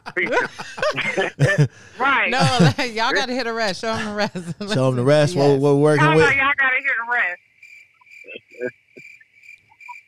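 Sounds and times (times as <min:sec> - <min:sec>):
laughter: 0:00.0 - 0:06.4
speech: 0:00.2 - 0:07.5, 0:08.3 - 0:08.8
cricket chirping: 0:07.4 - 0:10.0.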